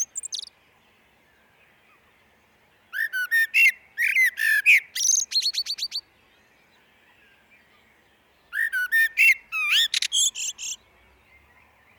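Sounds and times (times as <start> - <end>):
Common blackbird singing in a glen: 0.0 - 0.5, 2.9 - 6.0, 8.5 - 10.8.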